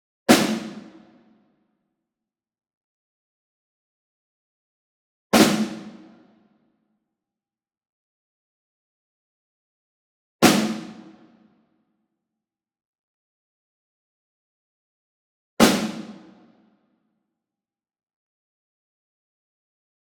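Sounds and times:
medium snare drum ensemble group hit: 0.3s - 0.9s, 5.4s - 6.0s, 10.4s - 11.0s, 15.6s - 16.2s.

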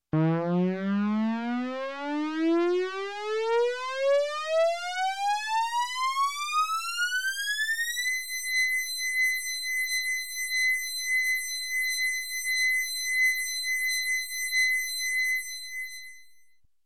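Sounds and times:
sharp electronic space air raid siren: 0.2s - 15.9s.

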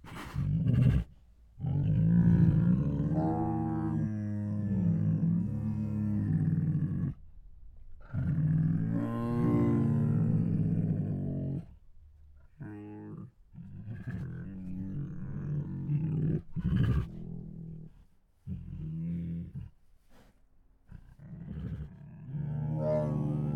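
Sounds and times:
hungry tiger groaning and moaning: 0.0s - 23.5s.

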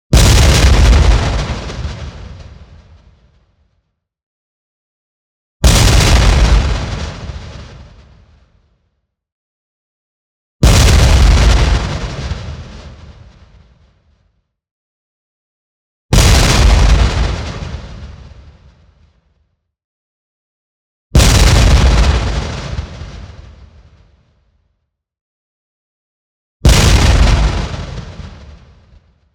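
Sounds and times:
long heavy explosion: 0.1s - 3.1s, 5.6s - 8.3s, 10.6s - 13.3s, 16.1s - 18.5s, 21.2s - 24.0s, 26.6s - 29.0s.

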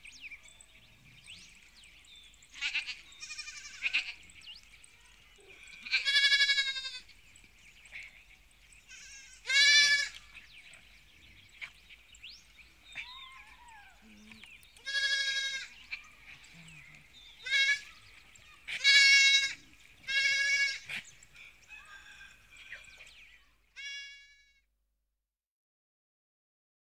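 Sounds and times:
faint farmyard sounds: 0.0s - 24.8s
sheep bleating on a farm: 2.5s - 4.2s, 5.7s - 7.1s, 8.9s - 10.3s, 14.8s - 21.0s, 23.8s - 24.6s.

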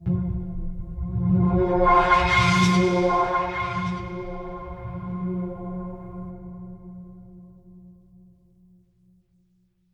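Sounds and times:
mysterious string music: 0.0s - 6.7s.

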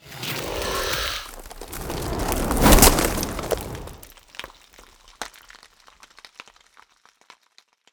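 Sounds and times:
ice spell whoosh frozen cyclone: 0.4s - 4.1s.

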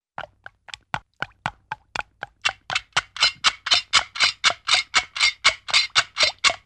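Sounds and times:
cartoon water drips: 0.2s - 3.2s
mechanical clock-like ticking: 2.0s - 6.6s.

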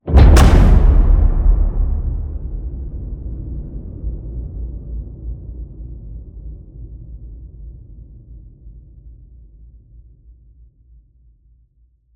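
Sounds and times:
low cinematic hit: 0.0s - 5.7s.

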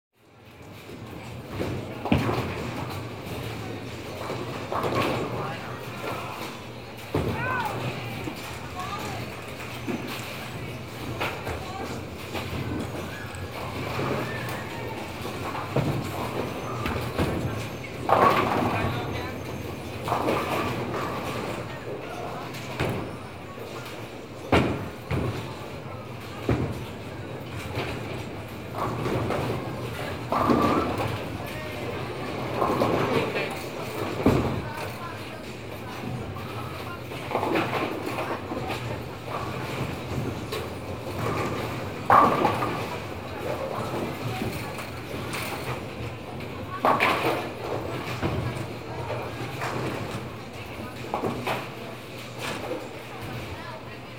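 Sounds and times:
bowling alley general atmosphere: 0.2s - 54.1s.

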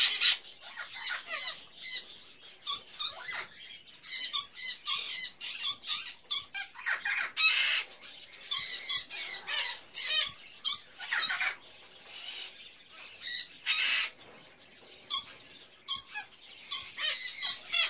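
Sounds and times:
various birds chirping in a pet shop: 0.0s - 17.8s.

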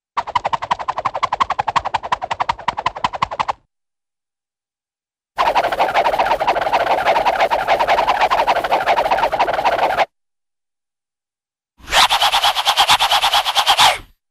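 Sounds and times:
rapid cartoon swishes: 0.2s - 3.6s, 5.4s - 10.1s, 11.8s - 14.1s.

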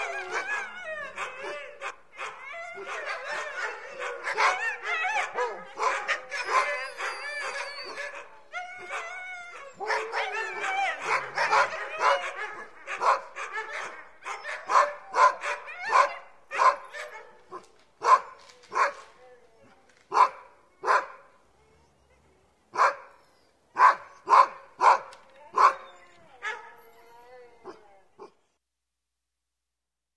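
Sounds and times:
Husky dog barking: 0.0s - 9.1s, 9.8s - 19.1s, 20.1s - 21.3s, 22.8s - 23.2s, 23.8s - 26.7s
Husky dog yelping: 0.0s - 22.1s, 22.8s - 28.3s.

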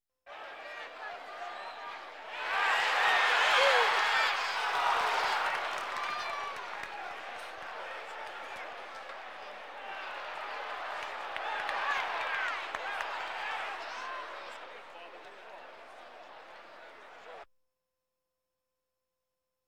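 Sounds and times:
sports crowd: 0.3s - 17.5s.

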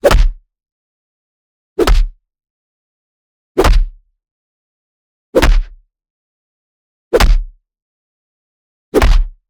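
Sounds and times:
short tight punch: 0.0s - 0.4s, 1.8s - 2.1s, 3.6s - 4.0s, 5.4s - 5.8s, 7.2s - 7.5s, 9.0s - 9.4s.

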